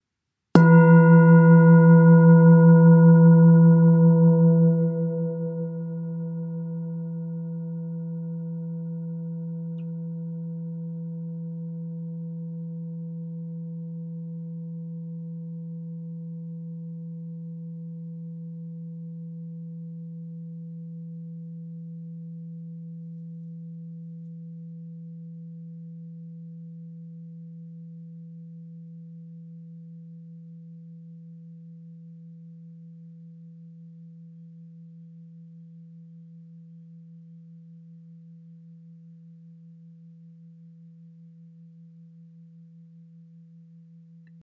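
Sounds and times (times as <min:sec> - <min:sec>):
singing bowl: 0:00.6 - 0:31.6.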